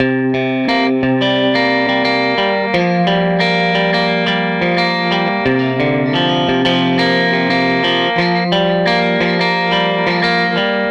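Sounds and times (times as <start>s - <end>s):
Telecaster electric guitar loop: 0.0s - 10.8s.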